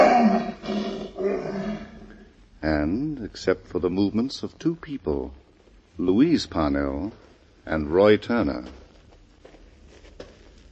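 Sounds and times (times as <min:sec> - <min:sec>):
untrained lion roaring: 0:00.0 - 0:02.3
speech: 0:02.8 - 0:05.4, 0:06.0 - 0:08.8.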